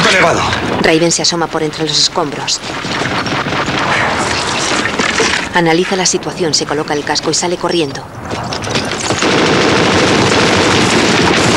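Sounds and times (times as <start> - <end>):
speech: 0.2 - 3.4, 5.6 - 8.8
sustained machine-gun fire in a battle among rubble: 1.9 - 6.9, 8.4 - 11.5.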